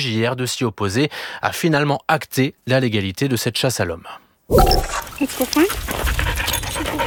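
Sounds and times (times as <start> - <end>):
speech: 0.0 - 6.2
dog panting: 5.9 - 7.0.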